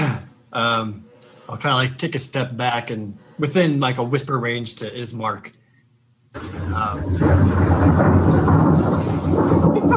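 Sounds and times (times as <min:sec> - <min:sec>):
speech: 0:00.5 - 0:05.6, 0:06.3 - 0:09.9
deep sustained rumble of thunder: 0:06.4 - 0:09.9.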